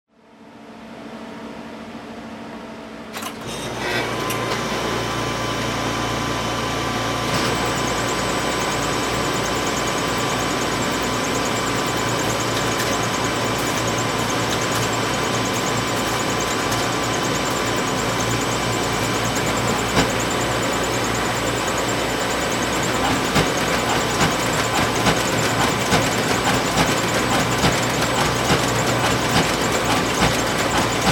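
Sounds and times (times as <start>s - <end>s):
loud photocopier running: 1.8s - 31.1s.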